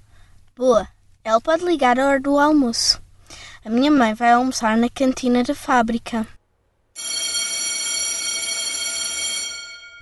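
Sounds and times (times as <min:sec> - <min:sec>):
speech: 0:00.6 - 0:03.0, 0:03.6 - 0:06.4
electric school bell ringing: 0:07.0 - 0:10.0.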